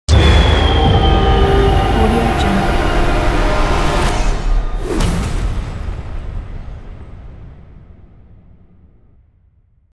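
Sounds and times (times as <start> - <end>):
horror movie logo sting: 0.1 - 6.0.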